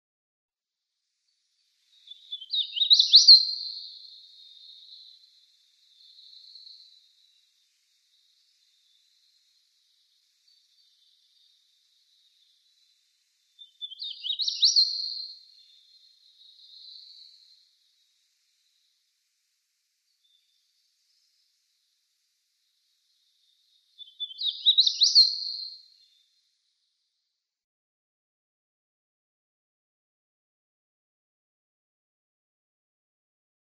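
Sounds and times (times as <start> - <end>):
Hooded Warbler singing: 1.9 - 7.4, 13.6 - 17.6, 23.2 - 26.2.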